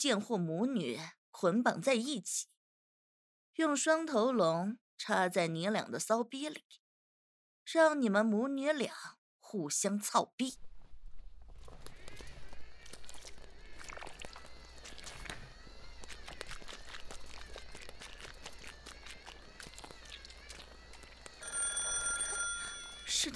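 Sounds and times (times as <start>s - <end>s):
speech: 0.0s - 2.6s, 3.6s - 6.8s, 7.7s - 10.7s
telephone ringing with a trilling bell: 21.4s - 23.3s.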